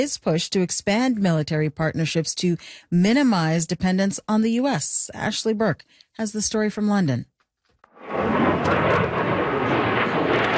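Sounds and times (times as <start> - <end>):
speech: 0.0 - 7.3
next-generation fighter jet engine roar at an international air show in the U.K.: 8.0 - 10.5.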